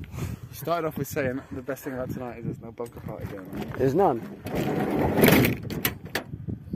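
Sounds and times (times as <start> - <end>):
speech: 0.6 - 5.9
lighter clunks and rattles of the van door settling: 2.8 - 6.4
van heavy sliding door rumbling along its track and thudding shut: 4.3 - 6.3.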